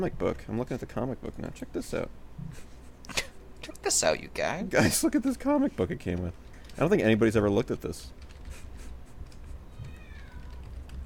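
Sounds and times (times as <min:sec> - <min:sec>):
speech: 0:00.0 - 0:08.2
low rumble: 0:00.0 - 0:11.0
girl imitating a cat's meow: 0:09.8 - 0:10.6.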